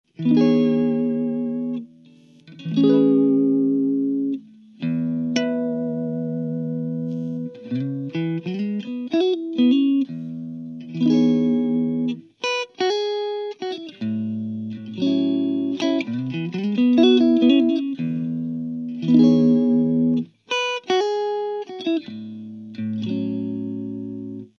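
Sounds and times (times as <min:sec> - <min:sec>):
clean Stratocaster electric guitar: 0:00.1 - 0:24.5.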